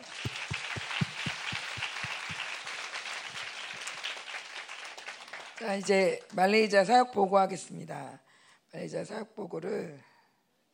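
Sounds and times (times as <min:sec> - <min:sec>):
church audience applauding: 0:00.0 - 0:06.0
speech: 0:05.6 - 0:10.1.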